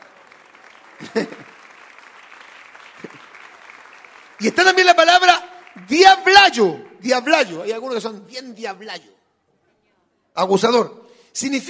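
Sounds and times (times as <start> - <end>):
congregation clapping: 0.0 - 8.5
laughter: 1.0 - 1.6
speech: 1.0 - 1.6, 4.4 - 9.2, 10.4 - 11.6.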